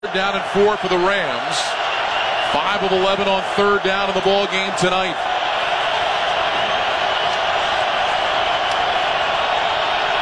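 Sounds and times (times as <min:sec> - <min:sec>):
large stadium crowd cheering and shouting: 0:00.0 - 0:10.2
speech: 0:00.1 - 0:01.8, 0:02.5 - 0:05.3.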